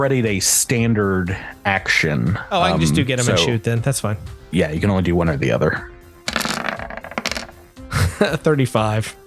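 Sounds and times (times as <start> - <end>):
speech: 0.0 - 5.9, 8.2 - 9.2
person speaking in a drawn-out sing-song tone: 2.5 - 3.8
small hard objects clattering across a tabletop: 6.3 - 7.7.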